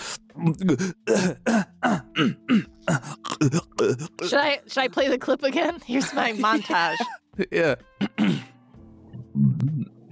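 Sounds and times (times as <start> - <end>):
speech: 0.4 - 8.4
person clearing throat: 0.6 - 4.2, 8.0 - 8.5.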